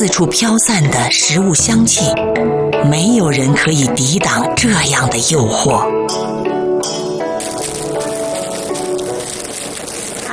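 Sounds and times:
speech: 0.0s - 6.6s
steady rain pattering outside a window: 7.4s - 10.3s.

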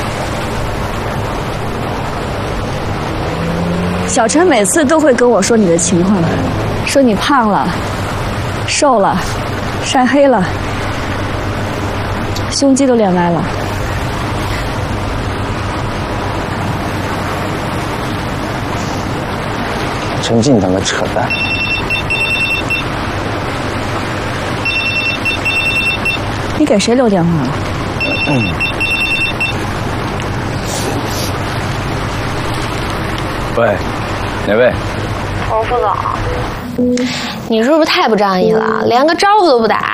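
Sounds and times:
steady outdoor noise: 0.0s - 39.9s
speech: 4.2s - 8.0s, 8.7s - 10.8s, 12.5s - 13.6s, 20.3s - 21.5s, 26.6s - 28.7s, 33.6s - 39.9s
telephone ringing in trilling bursts: 21.3s - 22.9s, 24.6s - 26.3s, 28.0s - 29.6s.

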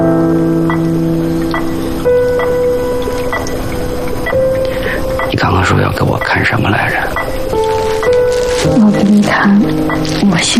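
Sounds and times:
sustained soft tonal music: 0.0s - 10.5s
wristwatch ticking: 0.7s - 10.5s
speech: 5.7s - 7.2s, 8.6s - 10.5s.

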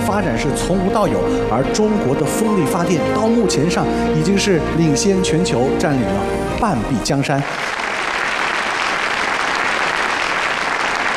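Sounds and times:
speech: 0.1s - 7.8s
large audience applause welcoming a speaker onto the stage: 7.3s - 11.1s.

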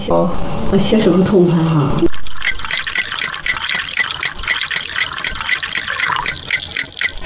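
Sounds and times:
speech: 0.0s - 2.1s
tap water running slowly into a cup in an upper-floor flat: 1.6s - 7.2s.

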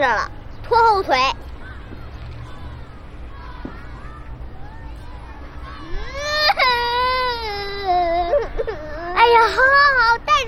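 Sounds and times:
speech: 0.0s - 1.5s
person crying loudly alone: 6.0s - 9.7s.

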